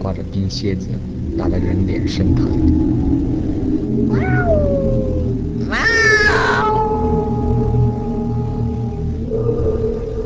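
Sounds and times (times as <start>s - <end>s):
speech: 0.0s - 3.6s
strong wind on a winter night: 0.0s - 10.2s
cat wailing at night: 4.1s - 9.2s.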